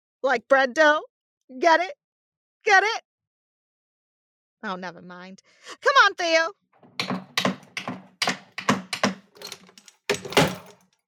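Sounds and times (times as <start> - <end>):
speech: 0.2 - 2.0, 2.6 - 3.1, 4.6 - 7.1
heavy keystrokes on a keyboard: 6.8 - 10.8.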